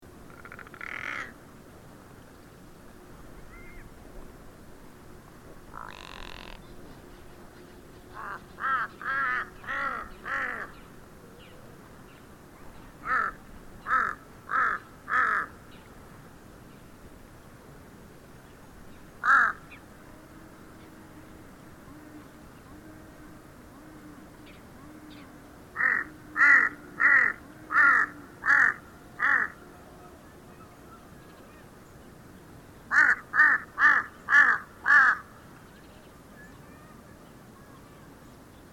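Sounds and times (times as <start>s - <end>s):
Tibetan crow: 0.3s - 1.4s, 5.8s - 6.6s, 8.2s - 10.7s, 13.0s - 15.5s, 19.2s - 19.6s, 25.8s - 29.6s, 32.9s - 35.3s.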